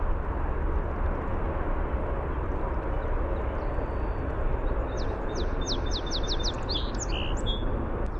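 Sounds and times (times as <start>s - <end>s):
low background rumble: 0.0s - 8.1s
song sparrow singing: 4.8s - 7.7s.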